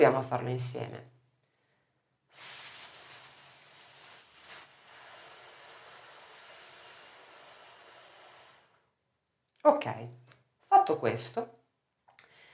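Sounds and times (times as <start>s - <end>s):
speech: 0.0s - 1.2s, 2.3s - 2.6s, 9.6s - 10.2s, 10.9s - 11.6s
person exhaling a long steady hissing sss in a breathing exercise: 2.3s - 8.9s.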